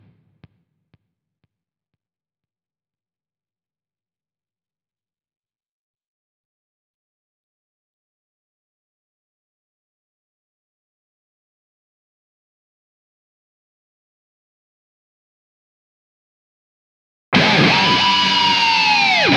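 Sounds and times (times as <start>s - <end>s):
guitar dive bomb: 17.4s - 19.3s.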